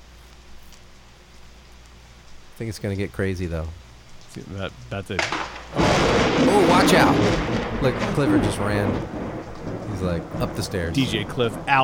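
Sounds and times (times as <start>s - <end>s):
soft rain falling: 0.0s - 11.8s
speech: 2.6s - 3.8s, 4.4s - 9.2s, 9.9s - 11.8s
low rumble: 5.7s - 11.8s.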